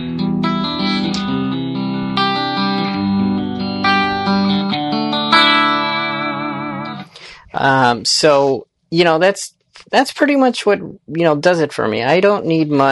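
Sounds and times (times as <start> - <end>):
electric guitar with clean tone and no chorus effect playing chords and single notes: 0.0 - 7.8
speech: 7.6 - 12.9.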